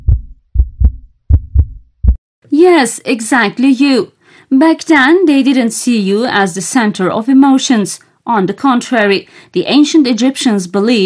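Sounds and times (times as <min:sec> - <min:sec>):
human heart beating in a lub-dub rhythm: 0:00.0 - 0:02.2
speech: 0:02.6 - 0:11.0.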